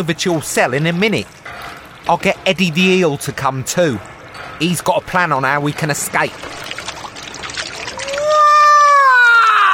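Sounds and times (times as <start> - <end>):
speech: 0.0 - 6.7
water running from a sink tap: 5.7 - 8.8.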